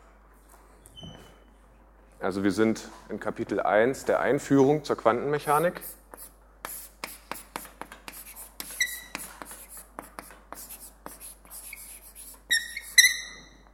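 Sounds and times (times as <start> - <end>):
speech: 2.2 - 6.0
writing on a board in a lecture hall: 5.5 - 13.0
high squeaks of writing on a board: 8.6 - 9.3, 11.6 - 13.7.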